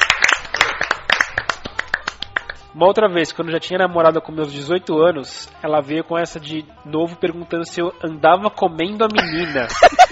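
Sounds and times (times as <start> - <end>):
audience applause: 0.0 - 2.5
speech: 2.8 - 10.1
laughter: 9.2 - 10.1.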